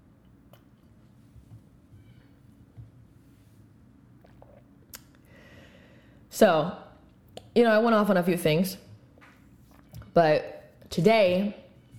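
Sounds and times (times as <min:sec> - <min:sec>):
person sipping coffee: 0:04.2 - 0:04.8
speech: 0:06.4 - 0:06.8, 0:07.6 - 0:08.8, 0:10.2 - 0:11.6.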